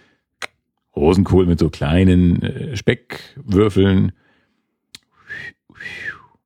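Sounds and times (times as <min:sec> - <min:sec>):
speech: 0:01.0 - 0:04.2, 0:05.4 - 0:06.2
person whistling appreciatively: 0:05.2 - 0:06.4.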